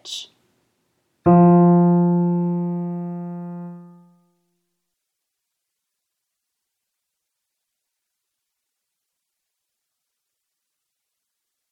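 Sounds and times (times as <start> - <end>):
tenor choir singing chromatic scale: 1.3 - 4.1.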